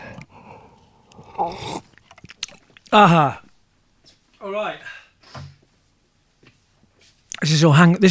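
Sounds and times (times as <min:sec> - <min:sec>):
slurping sip of cold latte without milk or ice from a cup: 0:00.0 - 0:02.9
faint mouth sounds: 0:00.0 - 0:03.0
speech: 0:01.4 - 0:01.9, 0:02.9 - 0:03.4, 0:04.4 - 0:04.9, 0:07.4 - 0:08.0.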